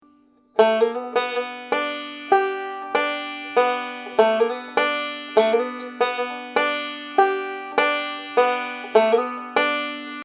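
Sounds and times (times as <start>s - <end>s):
banjo licks: 0.0s - 10.2s.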